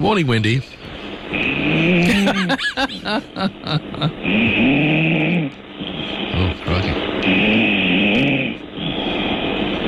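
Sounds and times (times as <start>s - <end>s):
speech: 0.0s - 0.8s, 1.4s - 5.6s
laughter: 2.0s - 4.2s
woman snoring heard through a telephone line: 4.3s - 6.4s, 7.3s - 9.7s.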